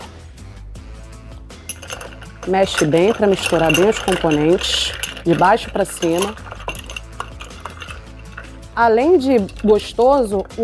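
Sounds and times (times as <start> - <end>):
ice clinking into a glass for a mojito: 1.7 - 8.6
speech: 2.4 - 6.5, 8.8 - 10.6.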